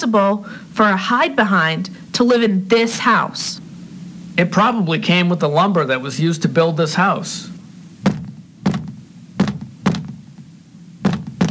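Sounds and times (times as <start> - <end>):
speech: 0.0 - 3.6, 4.4 - 7.5
dull solid knocking on a wall: 8.0 - 11.4.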